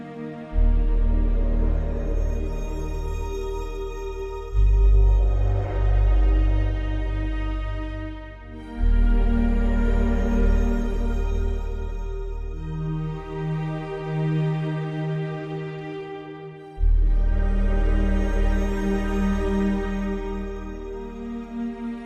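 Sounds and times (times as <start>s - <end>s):
ambient abyss drone: 0.4s - 22.0s.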